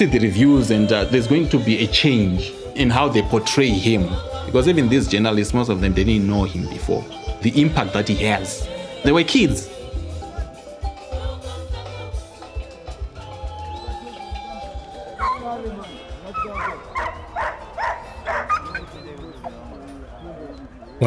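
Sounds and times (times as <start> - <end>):
speech: 0.0 - 9.7
indistinct voices: 0.0 - 21.0
security dogs barking on a littered stadium field: 15.1 - 15.6, 16.3 - 20.8.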